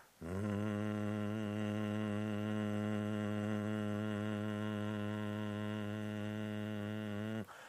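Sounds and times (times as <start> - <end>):
very low hummed mmm tone of a vocal exercise: 0.2 - 7.5.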